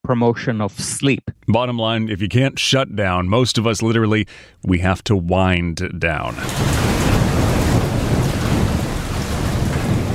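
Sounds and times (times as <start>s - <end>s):
speech: 0.1s - 7.1s
thunder rumbling played from a bedside speaker: 6.2s - 10.1s
heavy rain played from a bedside speaker: 6.3s - 10.1s.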